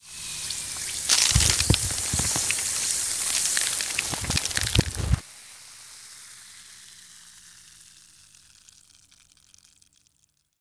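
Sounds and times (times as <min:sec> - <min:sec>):
hand mining: 0:00.5 - 0:05.2.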